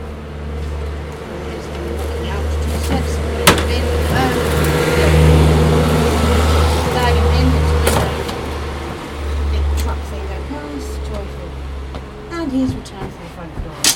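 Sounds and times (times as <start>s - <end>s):
industrial forklift engine droning outdoors: 0.0s - 13.9s
sharp clanks: 13.8s - 13.9s.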